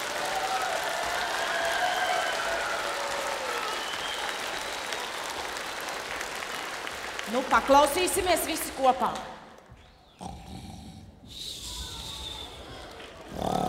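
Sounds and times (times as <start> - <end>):
group of children clapping at a show: 0.0 - 8.6, 12.6 - 13.6
speech: 7.3 - 9.4.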